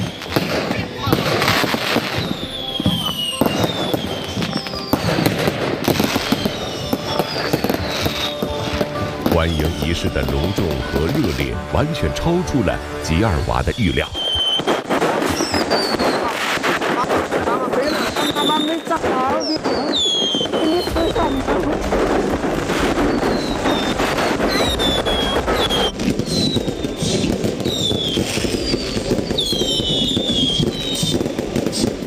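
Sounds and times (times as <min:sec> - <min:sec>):
firecrackers crackling: 0:00.0 - 0:32.0
speech: 0:09.4 - 0:14.2.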